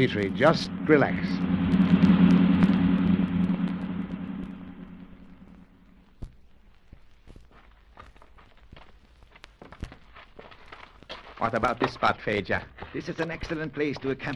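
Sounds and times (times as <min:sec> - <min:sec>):
speech: 0:00.0 - 0:02.0, 0:11.4 - 0:14.3
car engine roaring driving fast along a winding mountain road: 0:00.0 - 0:06.0.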